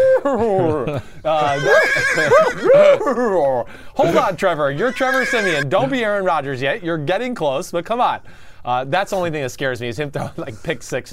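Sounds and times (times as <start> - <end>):
laughter: 0.0 - 5.7
speech: 0.2 - 11.1
person's voice mimicking a horse whinny: 1.4 - 3.1, 4.8 - 5.7.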